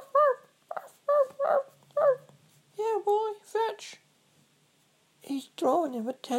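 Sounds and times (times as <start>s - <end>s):
dog yelping and whimpering: 0.0s - 2.3s
speech: 5.7s - 6.3s.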